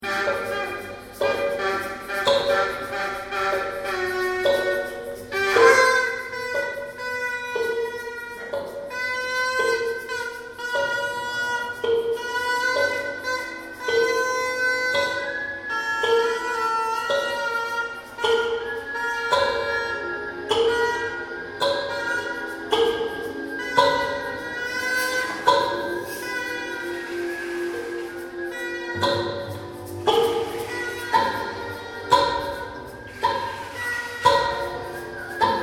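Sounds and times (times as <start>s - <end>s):
noise orchestra: 0.0s - 35.6s.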